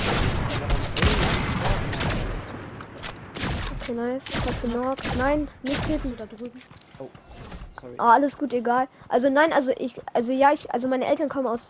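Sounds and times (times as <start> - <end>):
sniper rifle shots in a video game match: 0.0 - 6.2
gunfire-like bursts in a video game: 0.0 - 6.8
dense continuous video game noise: 0.0 - 11.6
speech: 3.9 - 11.6.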